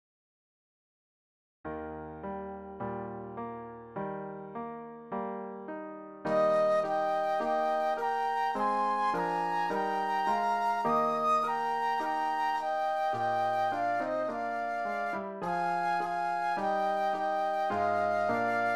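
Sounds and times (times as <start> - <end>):
classical piano: 1.7 - 18.7
classical flute duet: 6.3 - 18.7.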